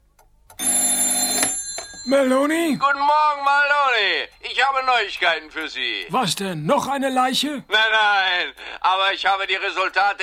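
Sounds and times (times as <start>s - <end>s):
telephone electric bell ringing: 0.6s - 3.4s
speech: 2.1s - 10.2s.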